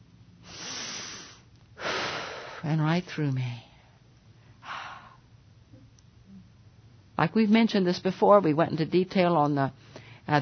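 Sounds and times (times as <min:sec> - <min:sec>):
deep breath drawn in through the nose: 0:00.4 - 0:02.6
speech: 0:02.6 - 0:03.7, 0:07.2 - 0:10.3.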